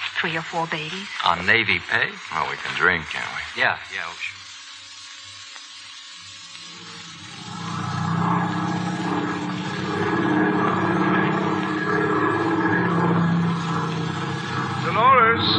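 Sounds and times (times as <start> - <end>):
speech: 0.2 - 4.4
propeller airplane engine droning as the plane flies off: 7.2 - 15.5.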